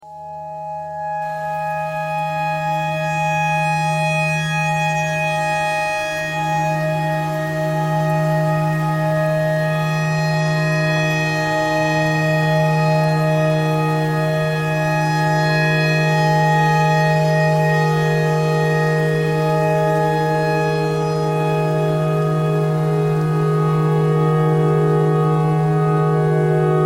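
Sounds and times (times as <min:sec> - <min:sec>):
tornado siren: 0:00.0 - 0:26.8.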